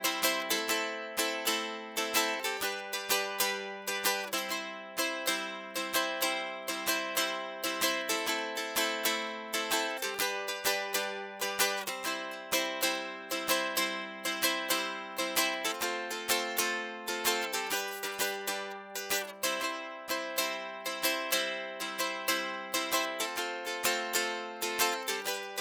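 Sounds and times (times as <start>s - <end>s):
ukulele recorded direct input: 0.0s - 25.5s.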